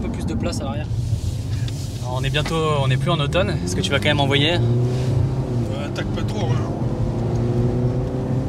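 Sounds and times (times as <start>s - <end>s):
Alfa rear-wheel-drive sedan engine roaring under hard acceleration: 0.0s - 8.4s
speech: 0.4s - 1.2s, 2.1s - 5.3s, 6.0s - 6.8s.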